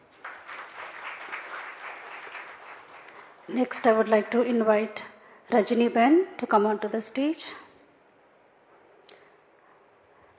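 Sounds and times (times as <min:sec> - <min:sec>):
crowd applause: 0:00.0 - 0:03.4
speech: 0:03.5 - 0:07.6.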